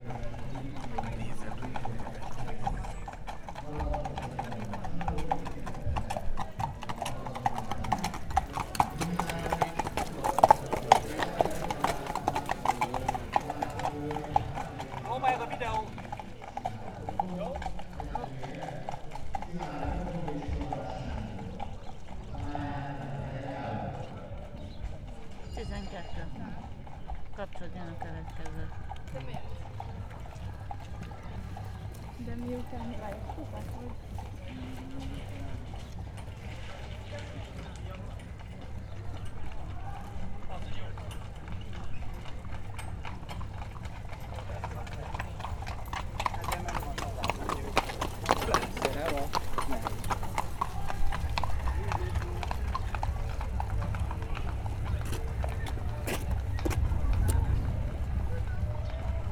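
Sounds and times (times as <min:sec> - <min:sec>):
horse-drawn carriage passing near a racetrack: 0:00.0 - 0:59.3.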